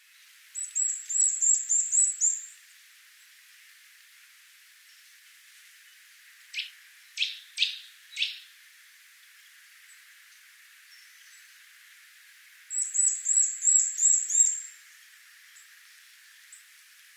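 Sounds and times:
Eurasian nuthatch Sitta europaea calling: 0.6 - 2.5, 6.5 - 8.5, 12.7 - 14.7.

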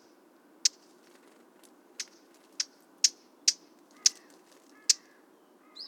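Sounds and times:
Eurasian blackcap sharp hard tack calls: 0.6 - 5.2.

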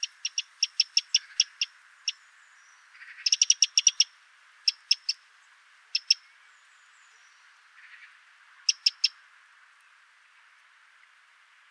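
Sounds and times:
Eurasian wren ticking calls: 0.0 - 2.2, 2.9 - 5.2, 5.9 - 6.2, 7.8 - 9.2.

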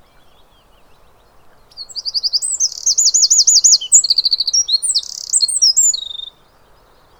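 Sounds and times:
Eurasian wren song of rapid high-pitched trills: 1.6 - 6.5.

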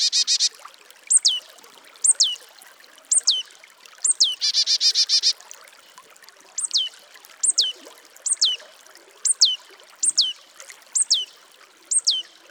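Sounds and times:
Marsh Tit Poecile palustris calling: 0.0 - 0.5, 1.1 - 1.4, 2.0 - 2.4, 3.1 - 3.4, 4.0 - 5.4, 6.6 - 8.6, 9.3 - 10.4, 11.0 - 11.3, 11.9 - 12.3.

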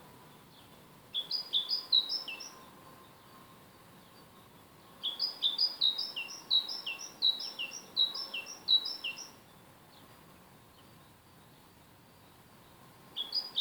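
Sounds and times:
great tit singing: 1.1 - 2.7, 5.0 - 9.4.

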